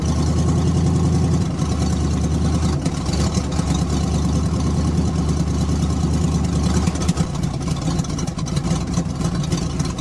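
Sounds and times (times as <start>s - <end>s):
old van: 0.0s - 9.9s.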